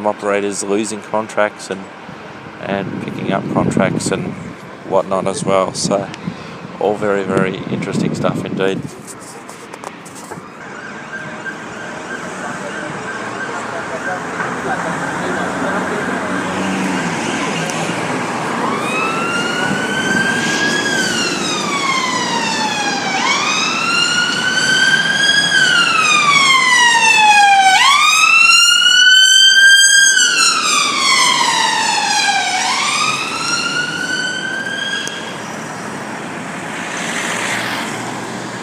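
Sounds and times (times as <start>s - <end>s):
speech: 0.0s - 9.0s
steady traffic rumble on a busy street: 0.0s - 38.6s
London ambulance siren wailing as it speeds past on a busy street: 10.2s - 38.6s.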